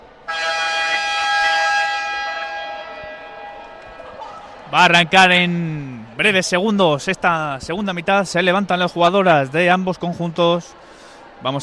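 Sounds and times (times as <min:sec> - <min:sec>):
sustained electronic arena horn blaring in an indoor arena: 0:00.1 - 0:05.2
speech: 0:04.7 - 0:11.6.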